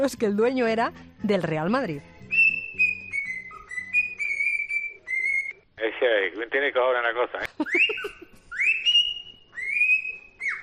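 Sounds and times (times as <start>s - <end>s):
speech: 0.0s - 2.1s, 6.1s - 7.9s
parrot whistling a football anthem tune: 2.3s - 5.6s, 7.6s - 10.6s.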